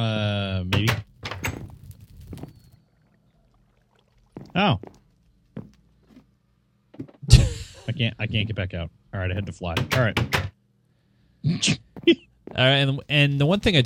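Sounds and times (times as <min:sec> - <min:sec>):
video game door creaking open: 0:00.8 - 0:02.7
speech: 0:04.6 - 0:05.0, 0:08.0 - 0:10.5, 0:11.5 - 0:13.8
person laughing: 0:11.5 - 0:12.3.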